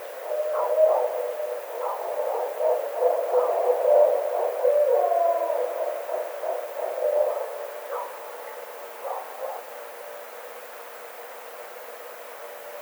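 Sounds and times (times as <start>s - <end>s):
Barred owl hooting: 0.2s - 8.1s.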